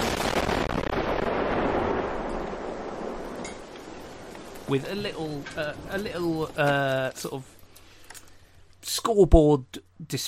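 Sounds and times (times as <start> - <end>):
video game firework celebration effect crackling and booming: 0.0 - 6.6
speech: 4.7 - 7.6, 8.9 - 10.2.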